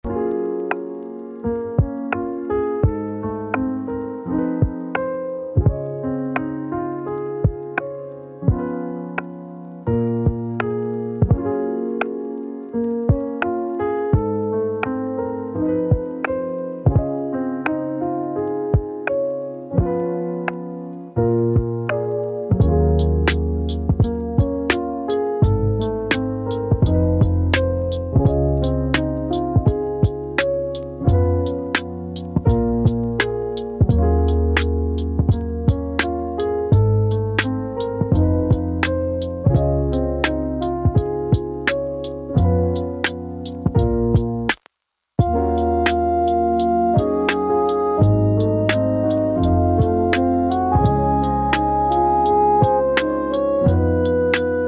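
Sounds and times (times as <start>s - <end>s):
chill lofi music: 0.0s - 54.6s.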